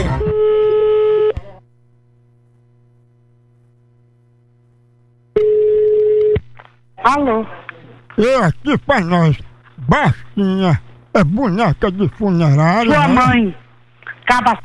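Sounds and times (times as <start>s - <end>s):
telephone call tones while dialing again: 0.1s - 1.4s, 5.4s - 6.4s
speech: 7.0s - 7.6s, 8.2s - 13.6s, 14.3s - 14.6s.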